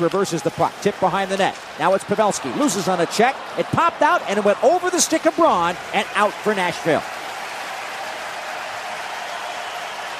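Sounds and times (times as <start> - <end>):
speech: 0.0 - 7.2
large hockey arena crowd roaring and applauding: 0.5 - 10.1.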